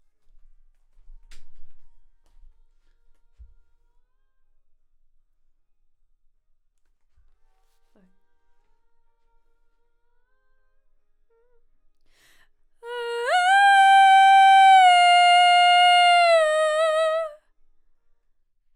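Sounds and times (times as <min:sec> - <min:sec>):
voice: 0:12.8 - 0:17.4.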